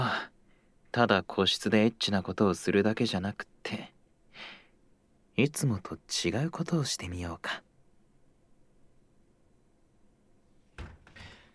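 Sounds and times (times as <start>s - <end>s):
speech: 1.0s - 4.6s, 5.4s - 7.7s
door pushed shut with a clunk and thud: 10.7s - 11.5s.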